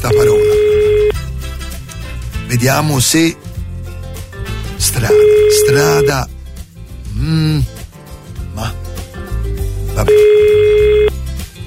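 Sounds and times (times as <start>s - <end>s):
speech: 0.0s - 0.3s, 2.6s - 3.5s, 4.8s - 6.3s, 7.2s - 7.8s, 10.0s - 11.0s
telephone ringing with an electronic tone: 0.0s - 1.2s, 5.0s - 6.3s, 10.1s - 11.1s.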